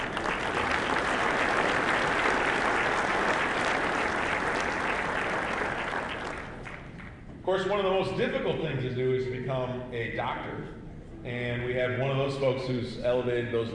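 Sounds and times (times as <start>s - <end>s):
sizable audience applauding departing colleagues: 0.0s - 7.2s
speech: 7.6s - 13.7s.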